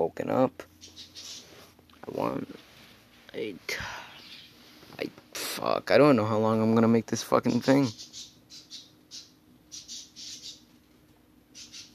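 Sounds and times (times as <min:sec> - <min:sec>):
low steady hum: 0:00.0 - 0:11.9
speech: 0:00.2 - 0:01.4, 0:02.1 - 0:02.6, 0:03.3 - 0:04.1, 0:05.0 - 0:08.1
pet birds clicking: 0:00.8 - 0:01.5, 0:07.3 - 0:10.7, 0:11.5 - 0:11.9.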